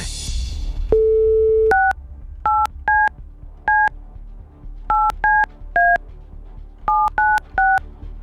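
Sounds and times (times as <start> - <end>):
dual-pitch touch tone beeps of a telephone number being dialed: 1.0 - 3.1, 3.7 - 3.9, 4.9 - 6.0, 6.9 - 7.8.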